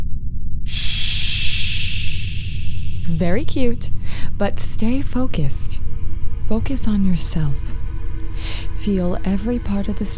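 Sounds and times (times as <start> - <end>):
low rumble: 0.0 - 10.1
slow deep breath: 0.7 - 3.1, 4.0 - 4.4, 8.3 - 8.7
speech: 3.2 - 5.8, 6.5 - 7.8, 8.8 - 10.1.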